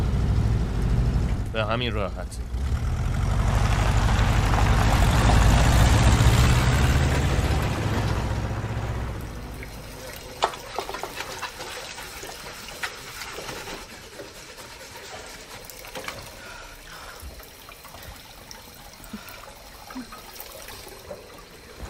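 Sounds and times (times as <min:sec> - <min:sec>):
manual-transmission car engine idling during a driving lesson: 0:00.0 - 0:10.4
speech: 0:01.6 - 0:02.9.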